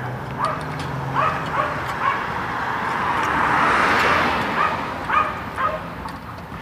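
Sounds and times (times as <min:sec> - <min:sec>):
passing car: 0:00.0 - 0:06.6
steady outdoor hum: 0:00.0 - 0:06.6
small dog yapping: 0:01.2 - 0:02.2, 0:04.0 - 0:05.9.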